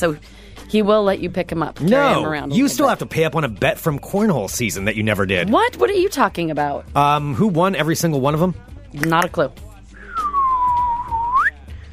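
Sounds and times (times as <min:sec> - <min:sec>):
speech: 0:00.0 - 0:09.7
person whistling: 0:10.0 - 0:11.7.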